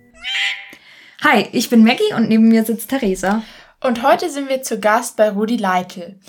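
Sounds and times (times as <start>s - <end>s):
horseshoe bat calls: 0.2s - 0.9s
speech: 1.3s - 6.2s.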